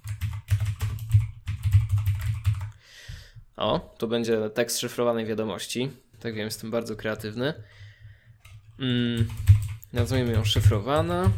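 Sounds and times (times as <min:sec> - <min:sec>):
rapid computer keyboard typing: 0:00.0 - 0:02.7, 0:08.4 - 0:11.3
speech: 0:03.6 - 0:07.8, 0:08.8 - 0:11.3.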